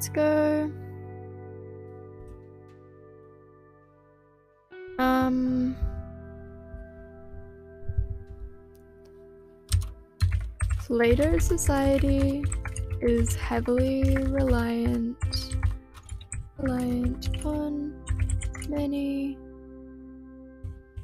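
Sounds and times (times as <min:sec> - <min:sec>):
speech: 0:00.0 - 0:00.8, 0:05.0 - 0:05.9, 0:10.9 - 0:15.6, 0:16.6 - 0:19.4
music: 0:00.0 - 0:21.0
clicky computer keyboard typing: 0:09.7 - 0:19.0.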